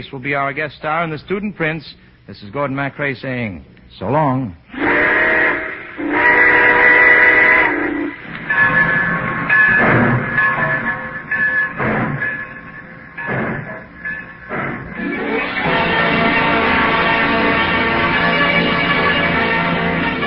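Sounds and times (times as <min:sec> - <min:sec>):
speech: 0:00.0 - 0:05.0
steam train whistle blowing: 0:04.7 - 0:09.8, 0:15.0 - 0:20.2
steam locomotive chugging and hissing as it pulls away: 0:04.7 - 0:20.2
steam locomotive clanking wheels: 0:08.1 - 0:20.2.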